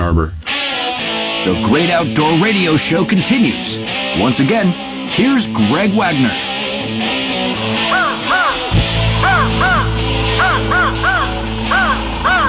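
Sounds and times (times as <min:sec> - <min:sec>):
speech: 0:00.1 - 0:00.4, 0:01.4 - 0:07.1
crows cawing: 0:07.4 - 0:12.4.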